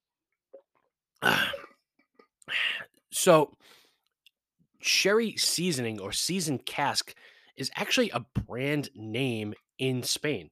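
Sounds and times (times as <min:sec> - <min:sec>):
person coughing harshly: 0:01.2 - 0:01.8
speech: 0:03.2 - 0:03.8, 0:04.8 - 0:10.5.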